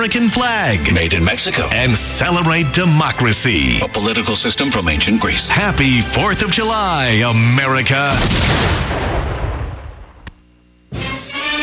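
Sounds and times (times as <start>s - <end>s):
speech: 0.0s - 9.1s
fireworks made in China exploding at a 4th of July celebration: 8.1s - 10.3s.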